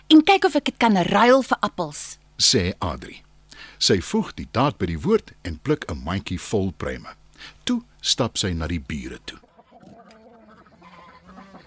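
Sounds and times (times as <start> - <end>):
speech: 0.1 - 9.5
many chickens clucking and squawking in a coop: 9.4 - 11.6.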